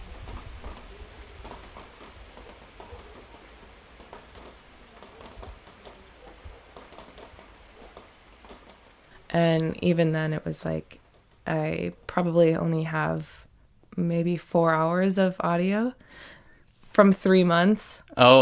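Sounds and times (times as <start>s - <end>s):
steady cold rain pattering on a November night in Bolson Patagonia: 0.0s - 13.3s
speech: 9.3s - 13.4s, 14.0s - 16.3s, 16.9s - 18.4s.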